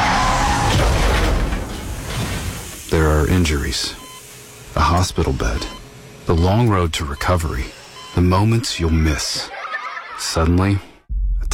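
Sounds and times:
car skidding and crashing: 0:00.0 - 0:02.7
speech: 0:02.9 - 0:04.0, 0:04.8 - 0:09.6, 0:10.2 - 0:10.9
laughter: 0:09.2 - 0:10.6.

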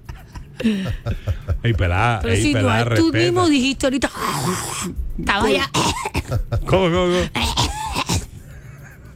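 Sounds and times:
speech: 0:00.6 - 0:07.7
strained wheezy voice: 0:04.0 - 0:09.0
person coughing roughly with harsh hacks: 0:05.6 - 0:08.4.

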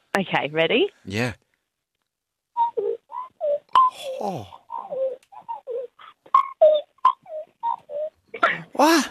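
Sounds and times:
speech: 0:00.2 - 0:01.4, 0:03.9 - 0:04.6, 0:08.8 - 0:09.0
person imitating a magpie call: 0:02.6 - 0:09.0.

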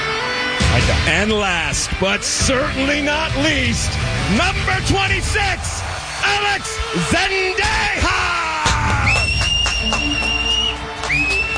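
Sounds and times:
speech: 0:00.8 - 0:08.4
loud crowd roaring and cheering: 0:02.9 - 0:11.5
people shouting: 0:04.4 - 0:09.4
scattered claps: 0:04.4 - 0:11.5
long steady piercing whistle: 0:09.0 - 0:11.5.

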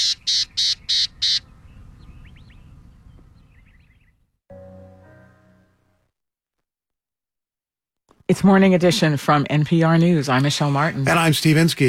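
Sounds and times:
gnatcatcher harsh buzzy calls: 0:00.0 - 0:01.5
music: 0:04.5 - 0:06.2
speech: 0:08.3 - 0:11.8.

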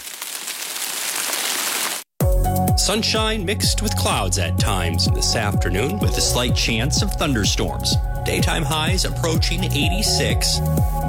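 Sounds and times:
steady rain falling on the west side of Buffalo: 0:00.0 - 0:02.1
speech: 0:02.8 - 0:11.0.

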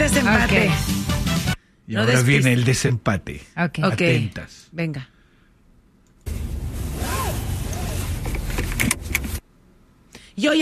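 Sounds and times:
speech: 0:00.1 - 0:01.0, 0:01.9 - 0:05.1, 0:10.4 - 0:10.6
car seat belt webbing sliding out: 0:06.4 - 0:09.4
car seat belt buckle clicks: 0:08.3 - 0:09.4.

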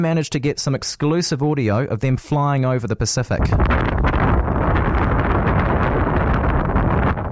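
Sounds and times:
speech: 0:00.0 - 0:04.3
strong wind roaring and buffeting the microphone: 0:03.3 - 0:07.3.

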